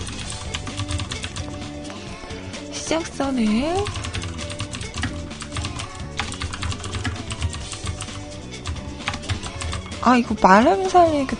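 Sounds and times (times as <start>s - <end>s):
typing on a computer keyboard: 0.0s - 1.6s, 3.8s - 9.9s
continuous low tonal background: 0.0s - 11.3s
speech: 2.9s - 4.0s, 10.0s - 11.3s.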